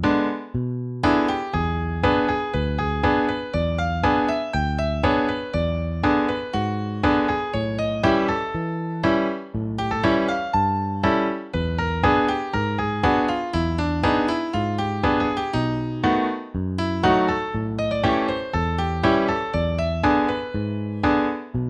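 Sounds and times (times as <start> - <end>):
twelve-bar blues: 0.1 - 21.5.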